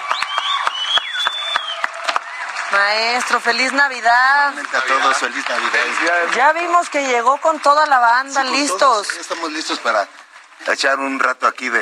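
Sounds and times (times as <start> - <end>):
crowd whistles: 0.0 - 2.5
crowd applause: 0.0 - 11.7
speech: 2.7 - 11.7.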